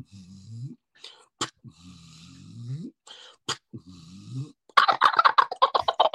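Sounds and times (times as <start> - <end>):
soft low breathy sounds: 0.0 - 4.7
wild turkey gobbler gobbling with a rapid rattle: 4.8 - 6.1.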